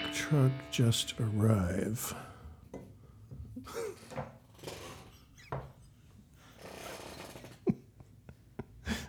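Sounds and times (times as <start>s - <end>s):
speech: 0.3s - 2.3s
chair creaking and rubbing: 4.0s - 5.8s, 6.5s - 7.7s.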